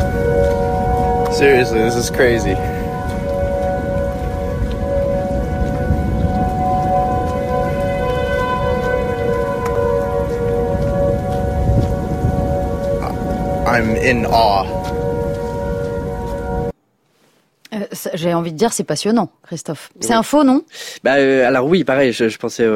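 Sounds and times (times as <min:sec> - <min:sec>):
tornado sirens droning in long steady overlapping tones: 0:00.0 - 0:16.8
speech: 0:01.4 - 0:02.8, 0:13.8 - 0:14.8, 0:18.1 - 0:22.7.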